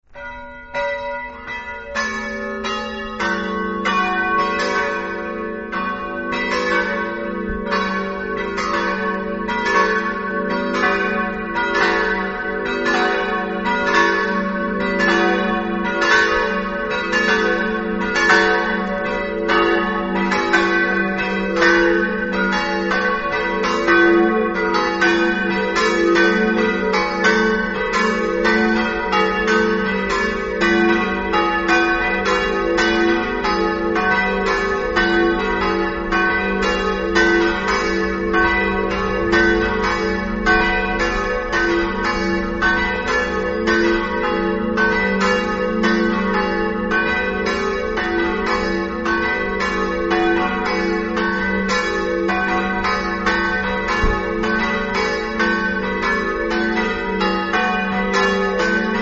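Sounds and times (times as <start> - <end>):
bells: 0.0 - 59.0.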